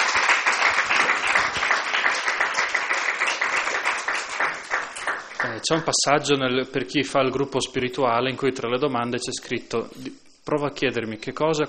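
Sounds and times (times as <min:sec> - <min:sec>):
audience applause: 0:00.0 - 0:05.7
speech: 0:05.4 - 0:11.6.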